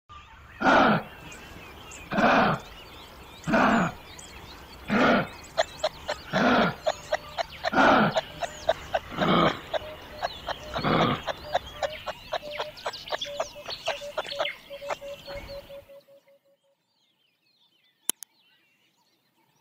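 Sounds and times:
wallaby: 0.6 - 1.3, 2.0 - 2.8, 3.4 - 4.1, 4.9 - 15.7.

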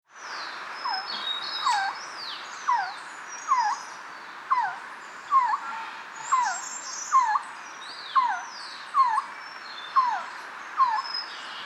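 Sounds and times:
resplendent quetzal calling: 0.8 - 2.0, 2.7 - 7.5, 8.2 - 9.3, 10.0 - 11.1.

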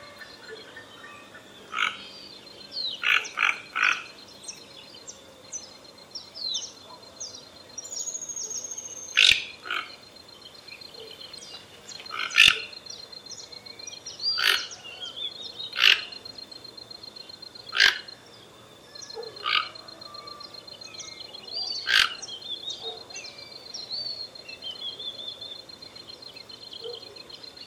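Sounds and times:
Toco toucan Ramphastos toco croaking: 0.0 - 2.2, 2.9 - 4.2, 9.2 - 10.1, 12.0 - 12.8, 14.3 - 15.0, 15.7 - 16.2, 17.7 - 18.2, 19.2 - 20.3, 21.8 - 23.0.

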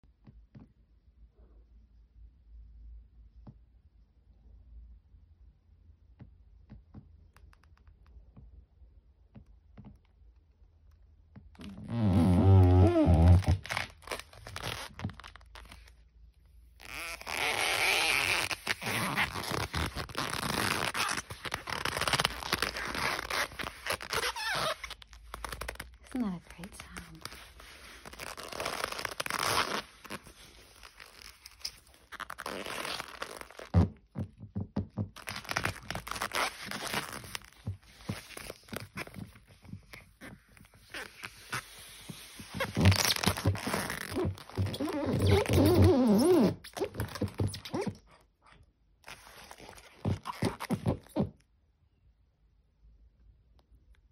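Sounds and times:
leather shoes squeaking: 11.5 - 15.7, 16.8 - 25.9, 27.2 - 48.1, 49.1 - 51.4.

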